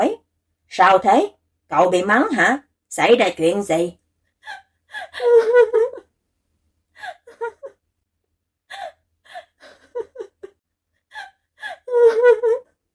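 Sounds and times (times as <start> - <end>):
speech: 0.0 - 4.6
person sobbing and crying loudly: 4.4 - 6.0, 7.0 - 7.8, 8.7 - 12.7.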